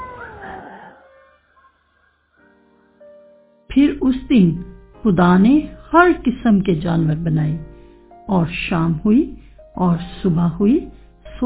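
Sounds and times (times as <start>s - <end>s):
cat meowing: 0.0s - 1.6s
speech: 3.8s - 7.7s, 8.3s - 11.4s.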